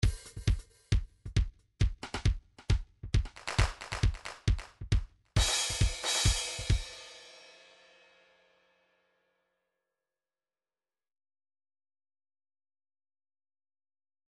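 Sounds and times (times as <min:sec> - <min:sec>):
trance MIDI loops and beats with delay: 0:00.0 - 0:06.8.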